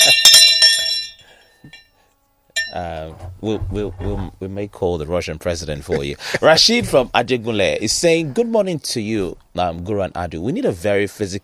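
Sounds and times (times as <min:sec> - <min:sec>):
small metallic bell ringing: 0:00.0 - 0:02.0, 0:02.6 - 0:02.8
speech: 0:02.7 - 0:11.4
laughter: 0:05.7 - 0:07.1.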